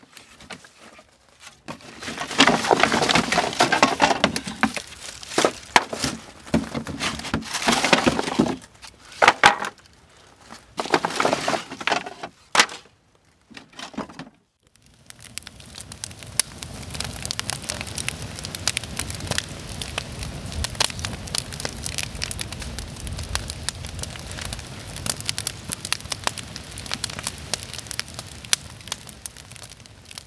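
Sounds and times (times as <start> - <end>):
campfire crackling and popping: 0.0 - 13.6, 14.6 - 30.2
firewood dropped and tumbled into a fire pit: 0.0 - 14.4
rustling handling noises: 0.0 - 14.4.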